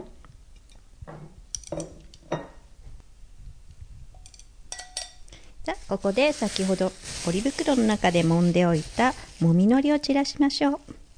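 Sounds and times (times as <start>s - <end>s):
utensils clinking against a dish: 4.2s - 5.3s
soft squishy scraping of pasta being served onto a plate: 5.7s - 9.5s
speech: 5.9s - 10.9s.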